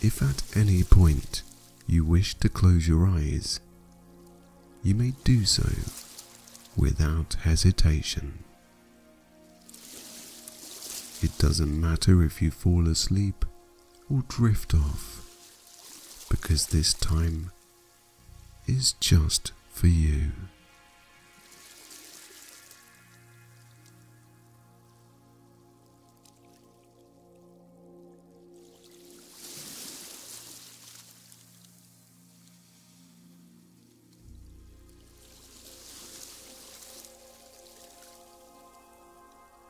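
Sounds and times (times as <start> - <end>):
gentle waves lapping against a shore: 0.0 - 2.0, 3.7 - 6.8, 8.4 - 11.6, 15.1 - 18.7, 20.6 - 27.4, 28.5 - 39.5
speech: 0.0 - 3.7, 4.8 - 6.0, 6.8 - 8.4, 11.2 - 13.5, 14.1 - 15.1, 16.3 - 17.6, 18.7 - 20.6
calm sustained musical drone: 0.0 - 39.6.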